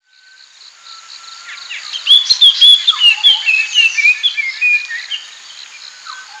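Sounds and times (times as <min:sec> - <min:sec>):
puff-throated babbler song of rapid clear whistled notes: 0:00.8 - 0:06.3.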